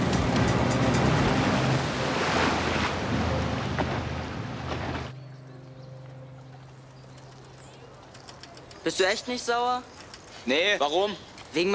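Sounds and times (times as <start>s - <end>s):
rushing waves: 0.0s - 5.2s
boat engine droning steadily: 0.0s - 8.1s
speech: 8.9s - 11.7s.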